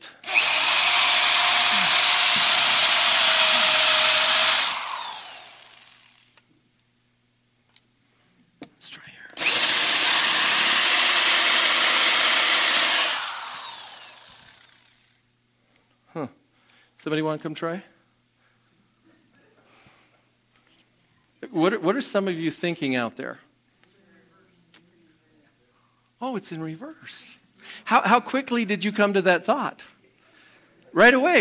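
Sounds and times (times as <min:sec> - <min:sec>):
power drill whirring while trying to drill a board: 0:00.0 - 0:06.4, 0:09.4 - 0:15.2
speech: 0:17.0 - 0:17.9, 0:21.6 - 0:23.5, 0:26.4 - 0:30.0, 0:30.9 - 0:31.4.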